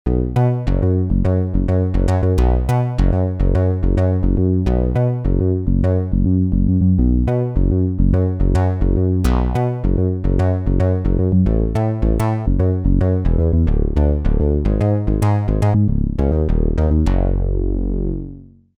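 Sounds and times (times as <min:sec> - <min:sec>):
Roland JV-880 stereo bass synthesizer patch: 0:00.1 - 0:18.7.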